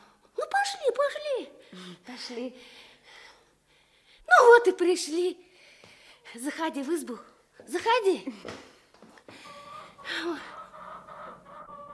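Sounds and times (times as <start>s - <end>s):
speech: 1.1s - 2.9s, 4.4s - 5.5s, 6.3s - 8.7s, 10.1s - 10.6s
hen letting out a short throaty cluck: 9.4s - 11.9s.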